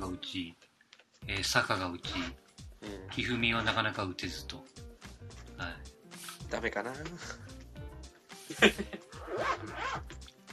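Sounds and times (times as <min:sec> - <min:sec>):
speech: 0:00.2 - 0:00.6, 0:01.2 - 0:04.8, 0:05.6 - 0:05.8, 0:06.5 - 0:07.4, 0:08.6 - 0:10.0
laughter: 0:08.5 - 0:09.2
clothing zipper being pulled closed: 0:09.2 - 0:10.2.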